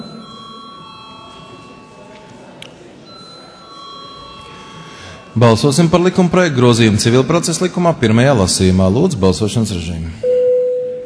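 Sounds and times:
parliamentary voting bell ringing before a vote: 0.0s - 6.8s
faint noise: 0.0s - 11.0s
speech: 5.4s - 10.3s.

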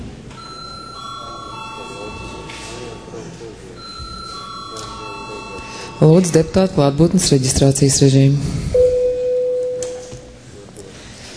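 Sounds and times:
low murmur of voices: 0.0s - 8.8s, 10.0s - 11.3s
electric bell ringing during a parliament session: 0.4s - 6.8s, 8.8s - 10.1s
speech: 6.0s - 8.6s.

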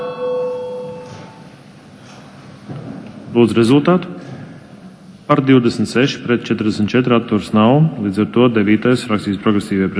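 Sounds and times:
parliament chamber bell rung to call a vote: 0.0s - 1.4s
speech: 3.3s - 4.2s, 5.3s - 9.9s.

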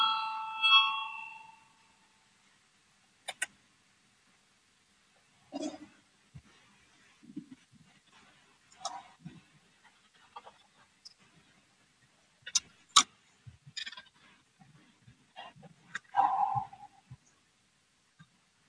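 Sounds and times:
parliamentary voting bell ringing: 0.0s - 1.6s
sharp clicks: 3.2s - 3.5s
soft knocks and shuffles: 5.2s - 12.8s, 13.4s - 17.4s.

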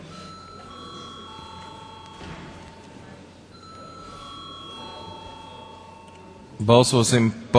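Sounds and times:
faint murmur of voices: 0.0s - 7.5s
electric bell ringing in a parliament chamber to call a vote: 0.2s - 6.6s
speech: 6.6s - 7.5s.

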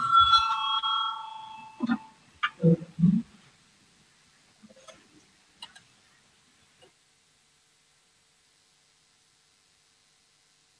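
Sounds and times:
bell rung in a parliamentary chamber to call a vote: 0.0s - 2.2s.

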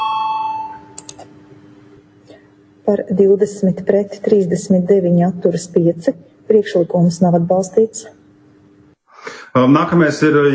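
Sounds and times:
electronic bell in a parliamentary chamber calling a vote: 0.0s - 1.0s
speech: 2.9s - 8.2s, 9.5s - 10.5s.

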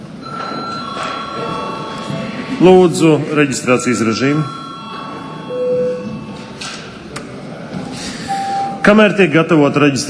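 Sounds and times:
faint murmur of a large room: 0.0s - 10.0s
electric chamber bell ringing for a break: 0.2s - 7.0s
speech: 2.6s - 4.6s, 8.8s - 10.0s.

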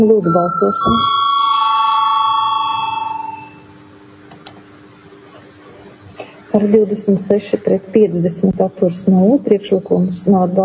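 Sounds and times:
speech: 0.0s - 1.5s, 6.5s - 10.6s
bell rung to call a parliamentary vote: 0.0s - 3.8s.

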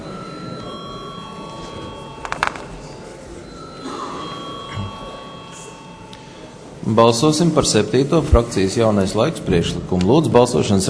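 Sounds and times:
murmuring voices: 0.0s - 8.5s
electric assembly bell ringing before a vote: 0.2s - 6.8s
speech: 6.9s - 10.8s.

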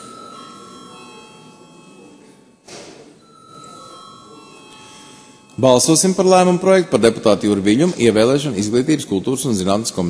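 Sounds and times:
parliament voting bell ringing as a steady electric tone: 0.0s - 2.6s, 3.2s - 7.2s
speech: 5.6s - 10.0s.

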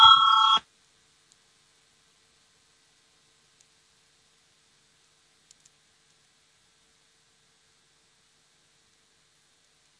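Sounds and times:
electric bell rung to call a parliamentary vote: 0.0s - 0.6s.

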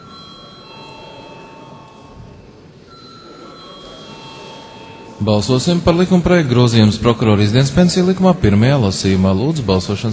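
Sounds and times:
electric bell ringing in a parliament chamber before a vote: 0.0s - 6.3s
speech: 5.2s - 10.1s.

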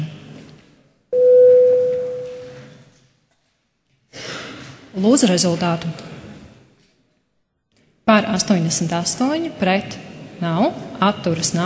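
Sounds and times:
parliamentary voting bell steady electronic tone: 1.2s - 2.6s
speech: 5.0s - 6.1s, 8.1s - 11.6s.

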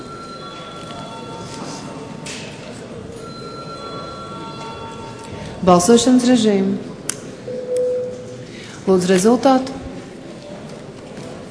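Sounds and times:
electric bell ringing in a parliament chamber to call a vote: 0.0s - 1.8s, 3.2s - 5.4s
low murmur: 0.0s - 11.4s
speech: 5.6s - 6.9s, 8.8s - 9.8s.

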